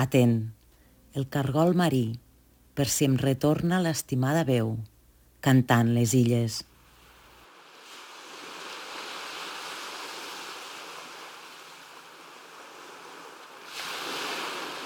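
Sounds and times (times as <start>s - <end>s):
speech: 0.0s - 0.6s, 1.2s - 2.2s, 2.8s - 6.7s
sea waves washing ashore: 7.4s - 14.8s.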